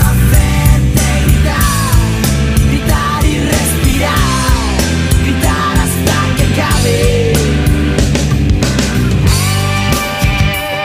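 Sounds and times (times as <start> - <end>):
shouted gliding lead vocal: 0.0 - 8.0
driving distorted guitars: 0.0 - 10.8
rock band playing a rock song: 0.0 - 10.8
steady drums: 0.0 - 10.8.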